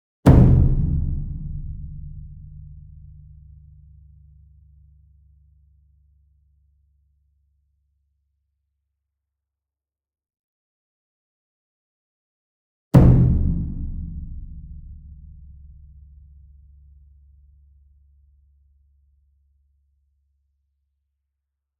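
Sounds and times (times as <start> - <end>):
concert bass drum and taiko ensemble drum hit: 0.3 - 3.4, 13.0 - 15.8.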